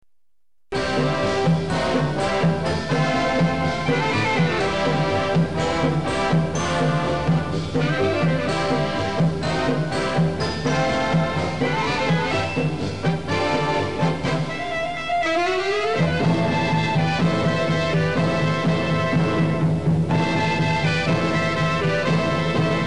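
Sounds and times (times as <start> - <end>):
marching band playing: 0.7 - 22.8.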